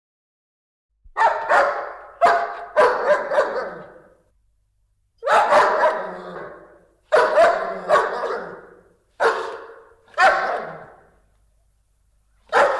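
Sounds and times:
large dogs barking with deep gruff woofs: 0:01.1 - 0:04.2, 0:05.2 - 0:11.2, 0:12.4 - 0:12.7.

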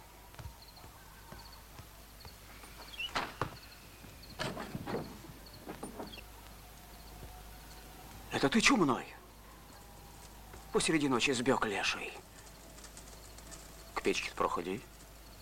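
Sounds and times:
door banging shut with a sharp thud: 0:03.1 - 0:03.7, 0:04.4 - 0:06.2
speech: 0:08.4 - 0:09.1, 0:10.7 - 0:12.3, 0:14.1 - 0:14.9.

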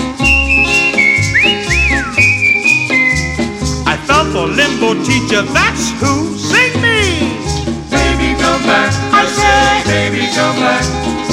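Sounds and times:
backing band with drums and bass: 0:00.0 - 0:11.3
person whistling a bright sliding melody: 0:00.1 - 0:07.6
speech: 0:04.4 - 0:06.5.

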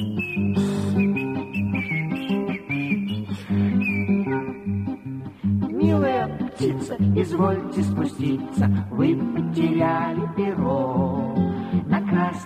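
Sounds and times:
high whistling melody through a hole in a rubber hedgehog toy: 0:00.0 - 0:05.2
musical accompaniment: 0:00.0 - 0:10.6
speech: 0:06.8 - 0:12.4.

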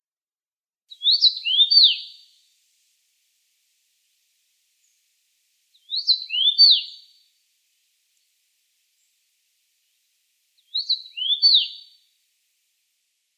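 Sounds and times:
common rosefinch Carpodacus erythrinus singing: 0:00.9 - 0:02.2, 0:05.8 - 0:07.0, 0:10.8 - 0:11.8.

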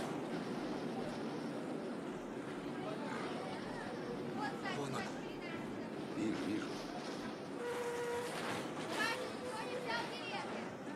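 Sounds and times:
indistinct chatter from passengers: 0:00.0 - 0:10.9
tram rumbling along its rails: 0:00.0 - 0:10.9.

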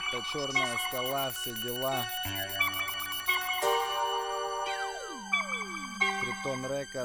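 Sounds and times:
speech: 0:00.1 - 0:03.0, 0:06.4 - 0:07.0
electronic phone ringtone with bright synthetic melody: 0:00.6 - 0:06.2.

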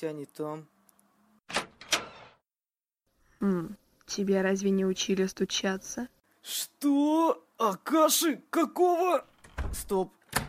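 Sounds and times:
speech: 0:00.0 - 0:00.8, 0:03.4 - 0:10.4
neighbouring door opening with scraping rushing movements: 0:01.5 - 0:02.5.

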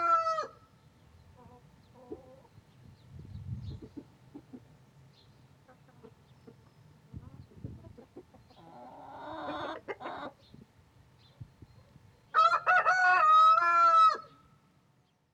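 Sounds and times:
rooster crowing: 0:00.0 - 0:00.6, 0:12.3 - 0:14.3
hens clucking and grumbling: 0:01.4 - 0:02.6, 0:03.7 - 0:04.8, 0:05.6 - 0:10.5.

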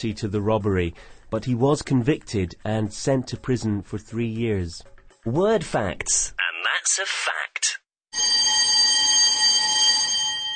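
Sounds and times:
speech: 0:00.0 - 0:08.4
bright electronic bell tone: 0:08.1 - 0:10.5.

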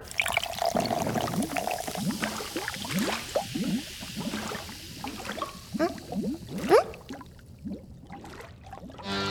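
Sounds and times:
Shiruko cider dark fizzy soda being poured with gurgling glugs: 0:00.1 - 0:09.2
bright carbonated hiss of fizzy soda: 0:00.1 - 0:09.2.

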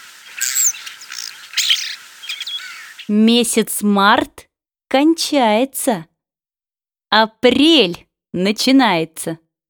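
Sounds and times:
starling singing: 0:00.0 - 0:03.2
speech: 0:03.1 - 0:06.1, 0:07.1 - 0:09.4.

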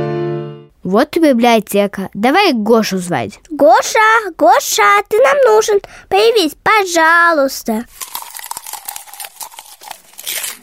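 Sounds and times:
speech: 0:00.8 - 0:08.3
paper crunching and crinkling as a bookworm munches pages: 0:07.9 - 0:10.6.

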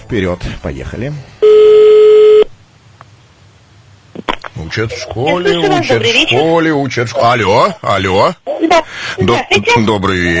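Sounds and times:
speech: 0:00.1 - 0:01.4, 0:04.7 - 0:10.3
telephone line tone during a call being placed: 0:01.4 - 0:02.5.

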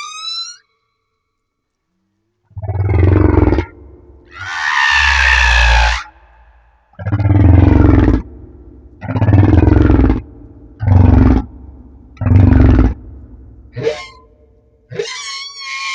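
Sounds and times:
humpback whale song off Madagascar: 0:02.6 - 0:14.3.

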